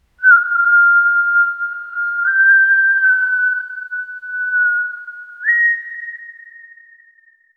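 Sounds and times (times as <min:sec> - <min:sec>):
slow haunting human whistle: 0:00.2 - 0:07.5.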